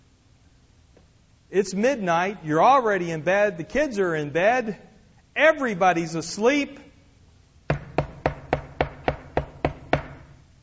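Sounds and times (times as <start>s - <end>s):
speech: 1.5s - 6.9s
knocking on a wooden door: 7.7s - 10.4s.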